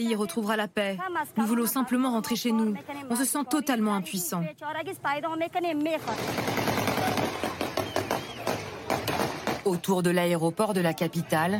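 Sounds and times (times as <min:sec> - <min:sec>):
speech: 0:00.0 - 0:06.9, 0:09.7 - 0:11.5
crowd noise: 0:00.0 - 0:11.5
gunfire fired to disperse crowds around the airport: 0:06.0 - 0:09.7.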